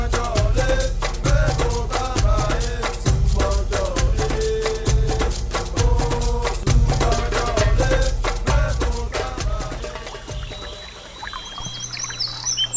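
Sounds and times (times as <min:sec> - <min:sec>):
full bass-heavy music in a radio drama: 0:00.0 - 0:10.8
light high bird chirps in a radio drama: 0:09.8 - 0:12.7.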